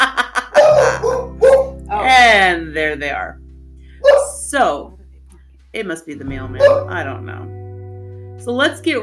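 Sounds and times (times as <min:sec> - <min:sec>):
dogs barking at a family home: 0:00.5 - 0:01.8, 0:04.0 - 0:04.3, 0:06.6 - 0:06.9
speech: 0:02.8 - 0:03.4, 0:04.5 - 0:04.9, 0:05.7 - 0:07.6, 0:08.4 - 0:09.0.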